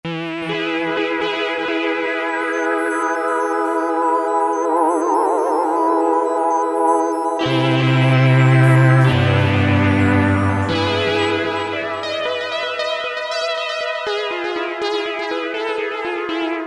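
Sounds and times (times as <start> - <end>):
Euro synth on Korg MS2000 synthesizer: 0.1 - 16.6.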